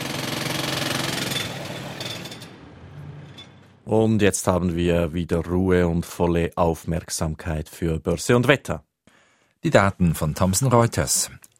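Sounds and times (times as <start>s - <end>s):
jackhammer pounding rapidly at a construction site: 0.0s - 3.7s
rumbling engine at a construction site: 0.0s - 5.6s
low mechanical drone: 1.4s - 4.2s
speech: 3.9s - 8.9s, 9.6s - 11.5s.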